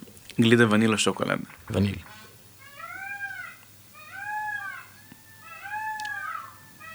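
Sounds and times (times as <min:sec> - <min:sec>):
speech: 0:00.4 - 0:02.2
peacock calling: 0:01.4 - 0:06.9.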